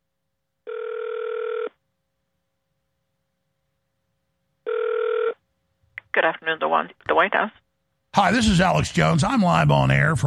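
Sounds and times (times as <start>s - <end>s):
ringback tone of an outgoing telephone call: 0.7s - 1.8s, 4.6s - 5.4s
speech: 6.2s - 7.6s, 8.2s - 10.2s.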